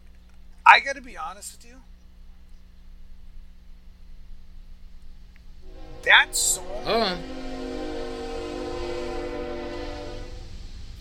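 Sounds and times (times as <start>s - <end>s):
speech: 0.7s - 1.9s, 6.0s - 7.4s
passing freight train horn: 5.6s - 10.6s.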